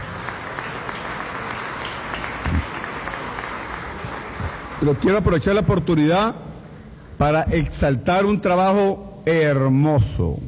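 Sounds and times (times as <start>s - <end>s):
audience applause: 0.0s - 5.6s
speech: 4.8s - 6.4s, 7.2s - 10.4s.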